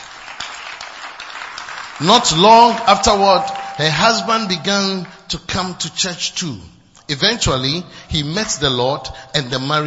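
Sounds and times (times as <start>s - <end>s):
crowd of people clapping together: 0.0s - 5.6s
speech: 2.0s - 9.8s.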